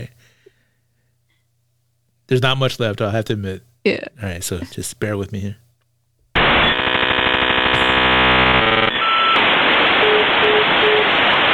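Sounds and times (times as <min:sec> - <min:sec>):
speech: 0:02.3 - 0:05.6
harsh electronic buzz from a phone line: 0:06.4 - 0:11.5
hissing static on a phone line: 0:06.4 - 0:11.5.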